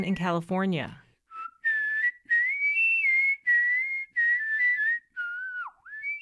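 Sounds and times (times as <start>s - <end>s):
speech: 0.0s - 1.0s
person whistling a lively tune: 1.3s - 6.2s.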